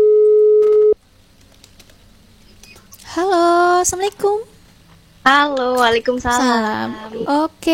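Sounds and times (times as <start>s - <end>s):
telephone ringback tone: 0.0s - 1.0s
speech: 3.8s - 4.5s, 5.2s - 7.7s.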